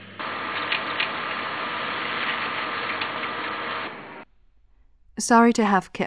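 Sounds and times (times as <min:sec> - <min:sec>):
printer printing a bill: 0:00.2 - 0:04.3
speech: 0:05.2 - 0:06.0.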